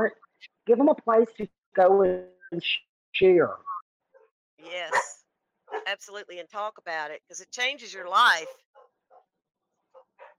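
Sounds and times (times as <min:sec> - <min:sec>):
speech: 0:00.0 - 0:03.7, 0:04.6 - 0:08.7
pet dog barking: 0:04.9 - 0:05.9, 0:08.8 - 0:09.3, 0:09.9 - 0:10.3.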